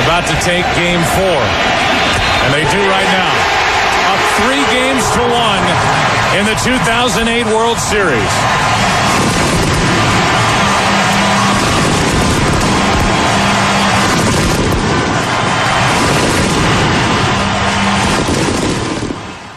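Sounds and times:
speech: 0.1s - 3.6s, 4.4s - 9.6s
fireworks exploding to celebrate a World Series game four win: 8.4s - 19.4s.

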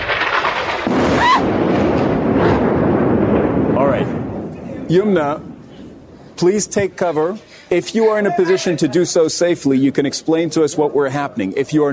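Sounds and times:
explosion of a bombed apartment building: 0.0s - 7.8s
speech: 4.9s - 5.5s, 6.4s - 11.9s.

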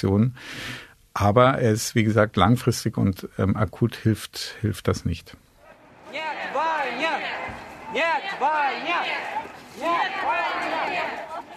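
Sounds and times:
speech: 0.0s - 5.4s
protest crowd chanting a slogan against the war outdoors: 5.6s - 11.5s.

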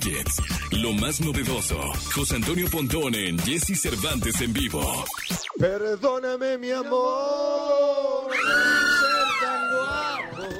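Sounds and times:
speech: 0.0s - 8.1s
crowd screaming and cheering as a technology guest is introduced: 8.2s - 10.5s.

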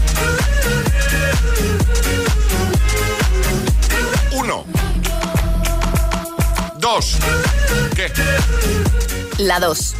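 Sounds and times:
upbeat electronic dance hit with four-on-the-floor kick and pulsing synths: 0.0s - 9.9s
speech: 8.0s - 9.9s.

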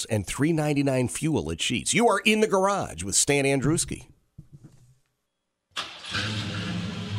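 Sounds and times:
speech: 0.0s - 4.1s
Chevy car engine cranking and starting with throaty dual exhaust rumble: 5.8s - 7.1s.

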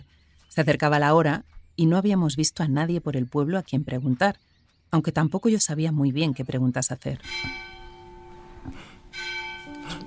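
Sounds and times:
speech: 0.5s - 7.8s, 8.6s - 9.3s
church bells ringing: 7.2s - 10.0s.

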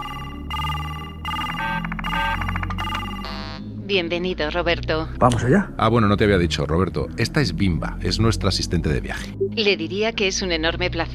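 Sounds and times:
phone call electronic ringtone through the in-car system of a BMW iX: 0.0s - 3.7s
speech: 3.9s - 11.1s.

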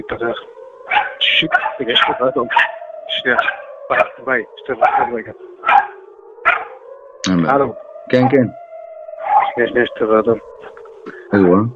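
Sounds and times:
speech: 0.0s - 5.5s, 7.3s - 8.6s, 9.6s - 11.7s
dog barking: 0.9s - 2.8s, 3.4s - 4.2s, 4.8s - 6.8s, 8.1s - 8.4s, 9.2s - 9.6s.

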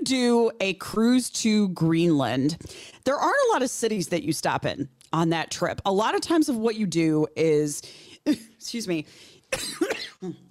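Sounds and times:
speech: 0.0s - 10.4s
person coughing persistently: 9.5s - 10.4s.

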